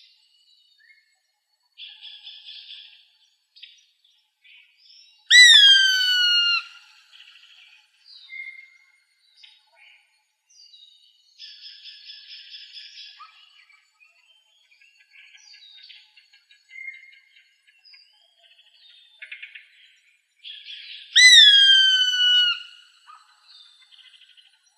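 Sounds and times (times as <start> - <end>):
gray hawk whistled call in Arizona: 5.3 - 6.8, 21.2 - 22.8.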